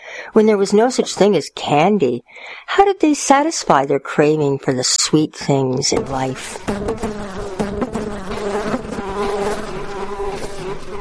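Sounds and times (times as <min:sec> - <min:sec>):
speech: 0:00.3 - 0:07.5
bees buzzing at a beehive: 0:06.0 - 0:11.0.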